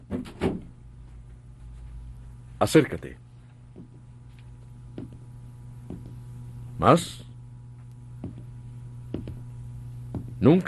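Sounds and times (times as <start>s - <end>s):
study door in a gloomy old house swinging shut with a clunk and thud: 0.0s - 0.7s
speech: 2.6s - 3.3s, 6.8s - 7.2s, 10.4s - 10.6s.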